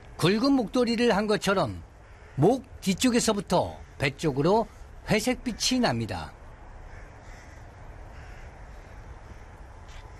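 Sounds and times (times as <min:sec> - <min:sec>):
outdoor noise: 0:00.0 - 0:10.1
speech: 0:00.2 - 0:06.4
jackdaw cawing: 0:01.9 - 0:02.7, 0:03.6 - 0:05.8, 0:06.8 - 0:10.1.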